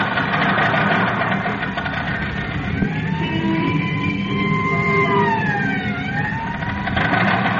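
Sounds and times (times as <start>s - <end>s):
car engine roaring on a mountain road: 0.2s - 7.5s
ambulance siren wailing heading up the mountain: 1.8s - 7.5s.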